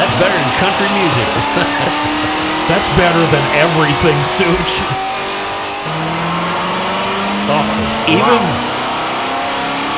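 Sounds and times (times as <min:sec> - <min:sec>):
loud car engine revving: 0:00.0 - 0:09.9
laughter: 0:00.2 - 0:05.0
speech: 0:02.7 - 0:05.2, 0:07.5 - 0:08.7.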